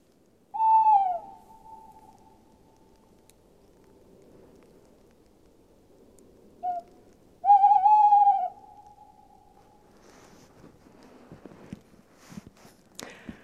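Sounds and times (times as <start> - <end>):
tawny owl hooting: 0.5 - 2.7, 6.6 - 9.6
quiet rustling: 1.5 - 7.3, 9.5 - 13.4.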